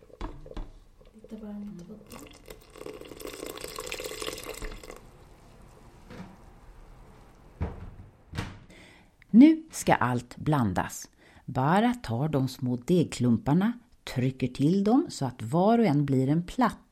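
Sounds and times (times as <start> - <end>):
water pouring while cooking: 0.0 - 6.0
speech: 9.4 - 16.8.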